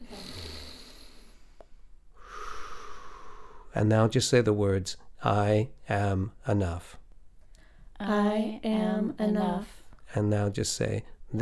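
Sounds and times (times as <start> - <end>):
deep breath during a guided breathing exercise: 0.0 - 3.8, 7.5 - 7.9
speech: 3.8 - 7.0, 8.0 - 11.4.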